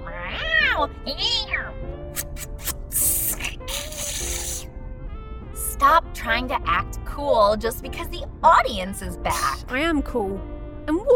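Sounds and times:
person imitating drawn-out whiny cat meows: 0:00.0 - 0:04.6
speech: 0:00.8 - 0:01.6, 0:05.8 - 0:11.1
breathy hissing and spitting bursts imitating a cat: 0:02.1 - 0:04.7.

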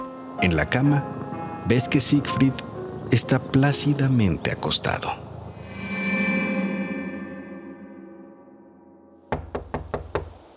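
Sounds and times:
sustained musical drone: 0:00.0 - 0:09.3
speech: 0:00.4 - 0:05.3
sharp loud knocking on a door: 0:09.3 - 0:10.4.

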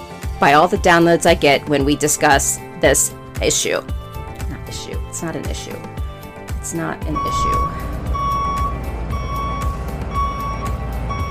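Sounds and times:
speech: 0:00.4 - 0:04.0, 0:04.7 - 0:05.9, 0:06.7 - 0:07.8
constant low engine rumble: 0:00.9 - 0:11.2
vehicle reversing beeps during parking: 0:07.0 - 0:11.2.

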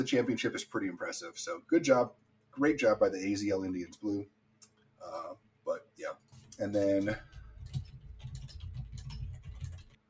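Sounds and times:
speech: 0:00.0 - 0:04.4, 0:05.0 - 0:07.3
soft rapid keyboard typing: 0:06.2 - 0:10.0.

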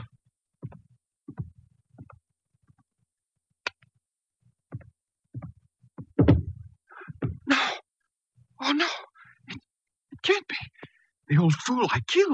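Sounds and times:
footsteps: 0:00.6 - 0:02.8, 0:04.7 - 0:07.5
speech: 0:11.5 - 0:12.3.

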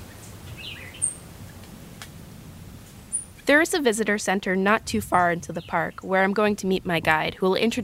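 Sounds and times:
faint birdsong outdoors with warbling: 0:00.0 - 0:01.6, 0:03.1 - 0:03.5, 0:05.1 - 0:07.8
low steady hum: 0:00.0 - 0:07.8
speech: 0:03.5 - 0:07.8.

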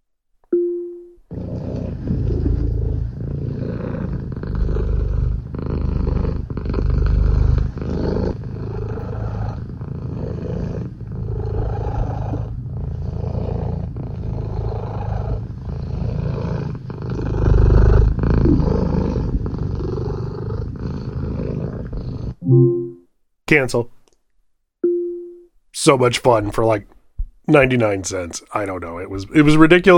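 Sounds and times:
cat purring played by smart speaker: 0:01.3 - 0:22.4
speech: 0:23.5 - 0:24.0, 0:25.8 - 0:29.9.

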